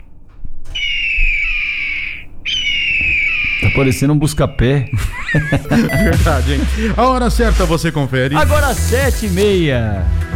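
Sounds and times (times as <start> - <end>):
hawk whistling call: 0.0 - 6.2
laughter: 3.6 - 7.3
speech: 3.7 - 10.2.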